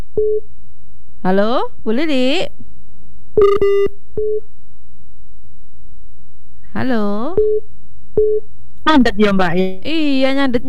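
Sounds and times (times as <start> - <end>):
speech: 0.2 - 0.6, 1.2 - 2.6, 3.4 - 4.6, 6.8 - 10.6
electronic telephone tones announcing an incoming call: 3.4 - 4.4.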